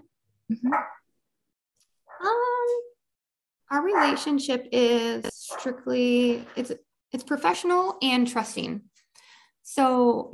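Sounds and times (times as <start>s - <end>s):
speech: 0.5s - 1.0s, 3.7s - 8.9s, 9.7s - 10.3s
pet dogs barking: 3.8s - 4.4s.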